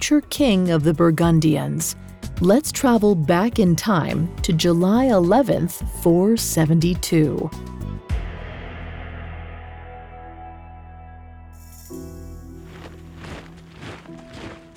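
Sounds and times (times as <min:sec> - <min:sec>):
speech: 0:00.0 - 0:07.8
soldiers' footsteps echoing in a basilica: 0:12.7 - 0:14.7.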